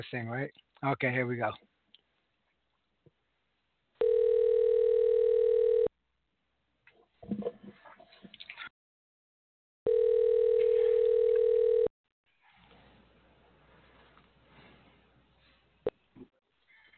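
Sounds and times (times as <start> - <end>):
speech: 0.0 - 1.7
telephone dialing and ringing tones: 4.0 - 5.9, 9.9 - 11.9.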